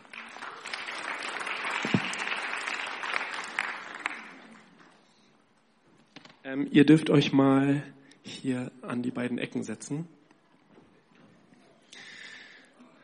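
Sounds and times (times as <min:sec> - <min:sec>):
audience crowd clapping: 0:00.0 - 0:05.2
speech: 0:06.6 - 0:10.2.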